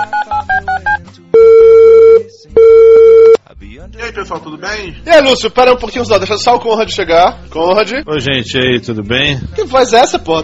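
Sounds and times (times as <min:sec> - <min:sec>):
telephone dialing beeps: 0:00.0 - 0:03.4
speech: 0:04.2 - 0:10.4.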